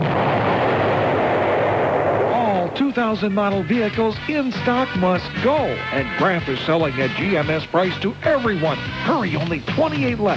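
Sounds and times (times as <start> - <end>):
rumbling explosion sound effect: 0.0 - 4.0
speech: 3.0 - 10.3.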